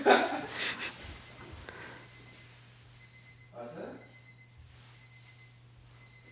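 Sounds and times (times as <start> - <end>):
snort or breathy laugh: 0.3 - 1.0
alarm clock beeping: 1.1 - 6.3.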